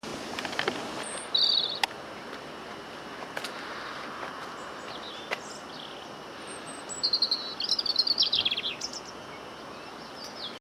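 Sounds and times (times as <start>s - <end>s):
steady background noise: 0.0s - 10.6s
bird calls with high notes and jumbled chatter: 1.0s - 1.8s, 4.6s - 9.3s.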